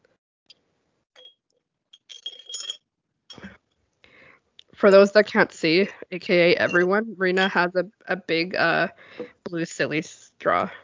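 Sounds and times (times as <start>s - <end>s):
glass handling sounds: 1.2s - 3.6s, 6.6s - 7.5s
glasses clinking together in a toast: 2.0s - 3.6s, 6.6s - 7.5s
speech: 4.8s - 10.8s.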